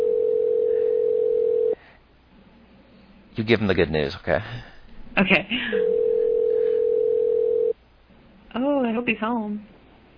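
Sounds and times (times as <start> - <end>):
telephone dial tone while placing a call: 0.0 - 1.8, 5.8 - 7.7
speech: 3.4 - 6.0, 8.5 - 9.7.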